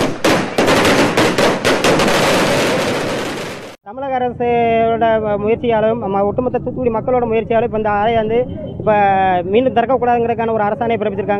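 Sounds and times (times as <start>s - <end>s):
string of firecrackers bursting in celebration: 0.0s - 3.8s
speech: 3.9s - 11.3s.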